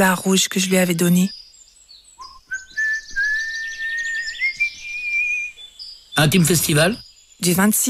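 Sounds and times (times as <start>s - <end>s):
speech: 0.0s - 1.4s, 6.2s - 7.8s
birds chirping: 0.0s - 7.8s
person whistling while walking away into fog: 2.2s - 5.6s.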